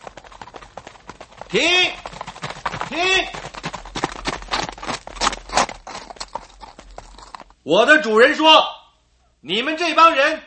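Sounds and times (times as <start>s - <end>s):
horse hooves clip-clopping: 0.0s - 7.6s
speech: 1.5s - 2.0s, 7.7s - 8.8s, 9.4s - 10.4s.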